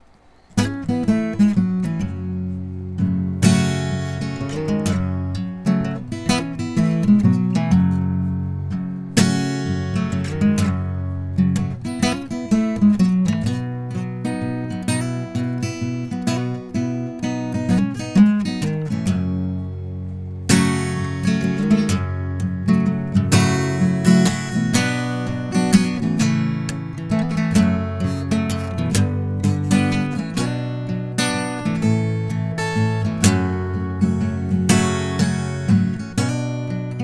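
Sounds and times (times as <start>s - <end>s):
acoustic guitar: 0.0s - 37.0s.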